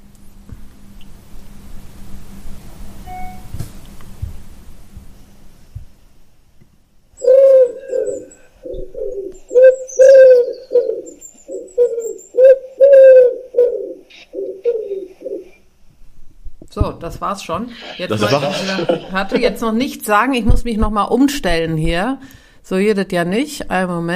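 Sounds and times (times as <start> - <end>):
faint low noise: 0.0 - 24.1
wood pigeon cooing: 7.2 - 15.6
speech: 17.0 - 24.1
laughter: 17.7 - 19.6.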